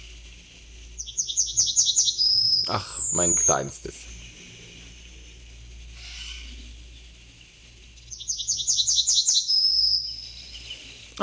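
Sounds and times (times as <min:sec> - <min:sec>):
faint background hum: 0:00.0 - 0:11.2
yellowhammer singing: 0:00.9 - 0:04.4, 0:06.8 - 0:11.2
speech: 0:02.7 - 0:04.1.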